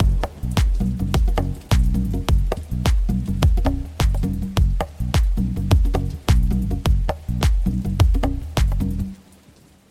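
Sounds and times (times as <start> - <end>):
conga rhythm in six-eight time: 0.0 - 9.2.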